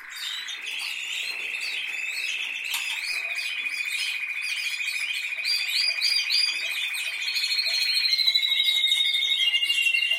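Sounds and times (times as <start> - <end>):
canary song with rolling trill: 0.0 - 10.1.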